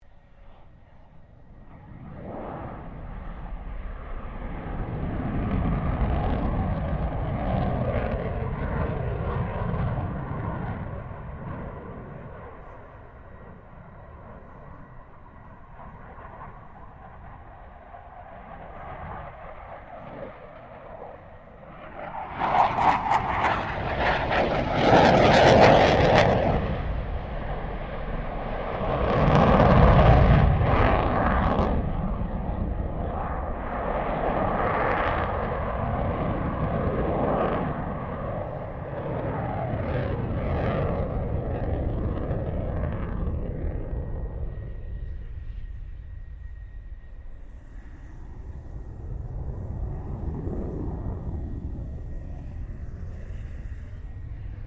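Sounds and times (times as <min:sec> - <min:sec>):
RAAF FA-18 Hornet jet maneuvering: 0:00.0 - 0:54.6.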